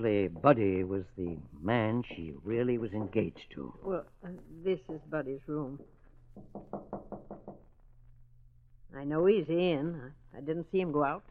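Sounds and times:
knocking on a door: 0.0s - 1.0s, 1.9s - 3.4s, 4.8s - 7.8s
speech: 0.0s - 7.0s, 8.9s - 11.2s.

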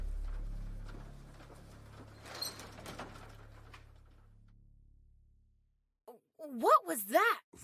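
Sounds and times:
daycare door opening and shutting with clicks and clatter: 0.1s - 4.3s
speech: 6.5s - 7.6s.

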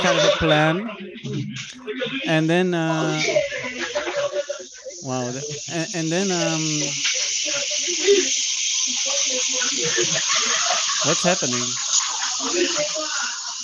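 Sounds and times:
laughter: 0.0s - 2.3s, 2.9s - 5.6s, 7.3s - 13.6s
speech: 0.0s - 11.8s, 12.4s - 13.2s
espresso machine hissing steam: 3.1s - 13.6s.

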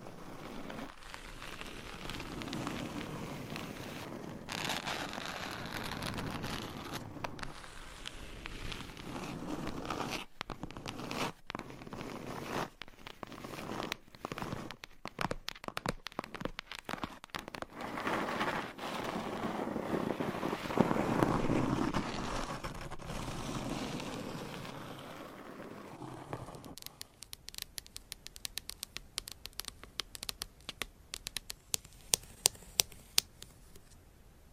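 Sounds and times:
crisp irregular tapping: 0.0s - 24.8s, 25.9s - 34.0s
dense scratching: 0.0s - 34.0s
sharp clicks: 26.7s - 33.5s.

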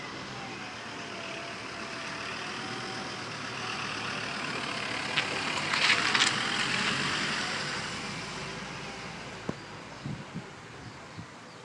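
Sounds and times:
car passing by from behind: 0.0s - 9.5s
sharp clicks and rattles: 5.1s - 6.8s.

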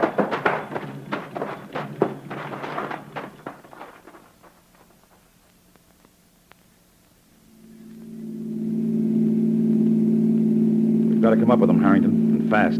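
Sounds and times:
car engine running and accelerating: 0.0s - 5.1s, 7.9s - 12.7s
quick clattering taps: 0.0s - 6.6s
speech: 11.3s - 12.7s.

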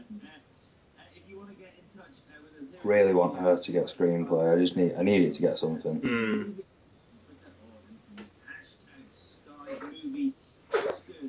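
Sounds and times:
speech: 1.7s - 6.7s
low voices murmuring: 2.7s - 11.2s
person sneezing: 10.7s - 11.0s.

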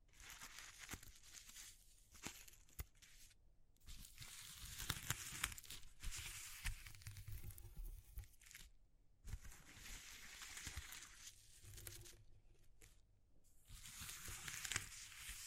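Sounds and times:
paper or plastic crinkling and tearing: 0.1s - 8.7s, 9.3s - 13.0s, 13.7s - 15.4s.

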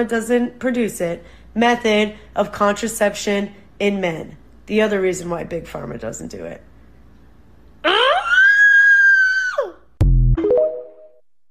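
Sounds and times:
speech: 0.0s - 6.7s, 7.8s - 8.2s
brief tonal cry: 7.8s - 9.8s
woman screaming: 7.8s - 9.9s.

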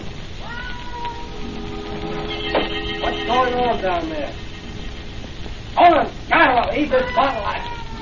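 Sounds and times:
steady hiss of noise: 0.0s - 8.0s
cat yowling with a drawn-out wavering yowl: 0.4s - 5.1s, 6.9s - 8.0s
speech: 3.5s - 4.4s, 5.8s - 7.7s.

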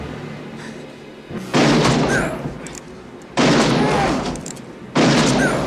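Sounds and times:
gunshots from a film scene: 1.5s - 2.4s, 3.4s - 4.2s, 4.9s - 5.6s.

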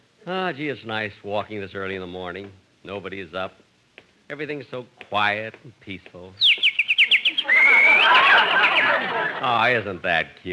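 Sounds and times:
speech: 0.2s - 3.6s, 4.3s - 6.5s, 8.4s - 10.5s
sparrow chirping and twittering in the morning in Beverly Hills: 6.4s - 8.9s
laughter: 7.4s - 10.1s.

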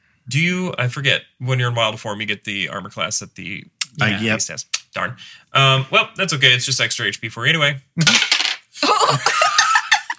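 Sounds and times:
speech: 0.3s - 9.5s
people laughing loudly: 4.0s - 4.4s, 8.8s - 10.1s
dice thrown and clattering across a hard surface: 8.0s - 8.7s.

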